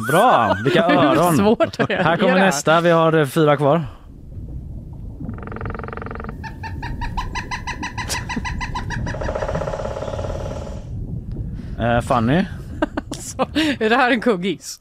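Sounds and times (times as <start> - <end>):
laughter: 0.0 - 2.8, 12.7 - 13.8
constant low rumble of noise: 0.0 - 14.2
speech: 0.1 - 4.0, 11.8 - 12.6, 13.4 - 14.7
woodpecker calling: 5.4 - 10.9.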